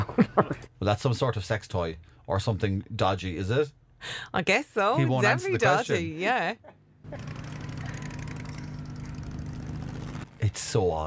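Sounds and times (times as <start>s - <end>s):
speech: 0.1s - 7.4s, 10.4s - 11.0s
motorbike engine starting and running with a rough buzzing tone: 7.0s - 10.4s.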